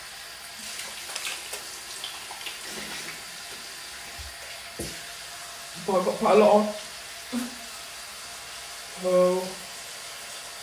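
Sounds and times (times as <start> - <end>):
tap water running into a sink: 0.0 - 10.6
hands scooping and splashing water: 0.6 - 3.7
speech: 5.9 - 7.6, 9.0 - 9.6.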